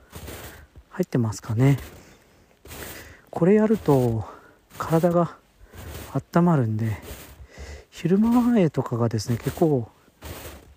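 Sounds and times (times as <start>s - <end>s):
footsteps crunching on snow: 0.0s - 10.7s
speech: 1.0s - 2.0s, 3.4s - 5.4s, 6.1s - 7.1s, 8.0s - 10.0s.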